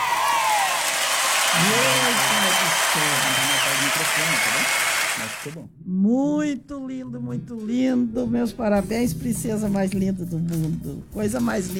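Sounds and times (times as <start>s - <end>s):
audience applauding: 0.0s - 5.6s
speech: 1.5s - 2.3s, 3.0s - 11.7s.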